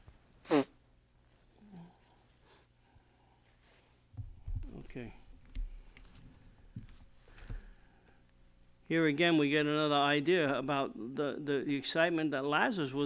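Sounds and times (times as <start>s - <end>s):
person blowing their nose: 0.4s - 0.8s
speech: 5.0s - 5.2s, 8.9s - 13.0s.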